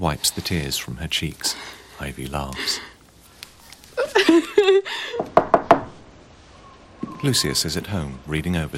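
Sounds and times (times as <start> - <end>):
speech: 0.0 - 2.9, 4.2 - 5.5, 7.2 - 8.7
laughter: 4.0 - 5.2
knocking on a door: 5.2 - 6.0.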